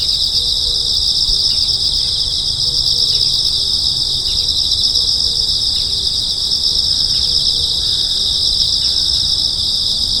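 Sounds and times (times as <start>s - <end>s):
insect chorus of constant high rapidly pulsed trilling: 0.0s - 10.1s.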